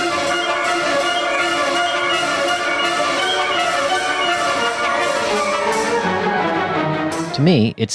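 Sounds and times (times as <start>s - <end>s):
symphony orchestra playing heard by the audience in a concert hall: 0.0s - 7.6s
speech: 7.4s - 7.9s.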